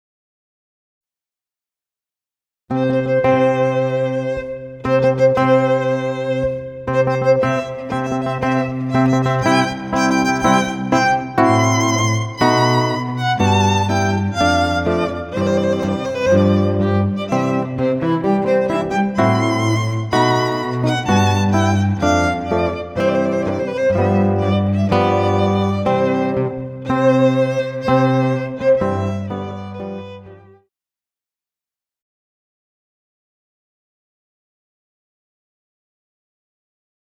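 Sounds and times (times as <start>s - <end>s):
guitar, violin and cello trio playing a wedding march: 2.8s - 30.6s.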